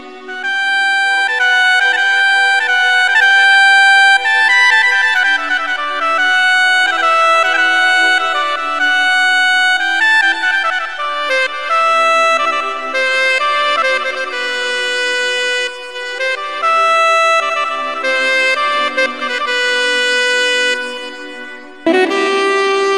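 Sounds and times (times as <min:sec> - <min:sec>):
virtual instrument saxophone melody: 0:00.0 - 0:22.9.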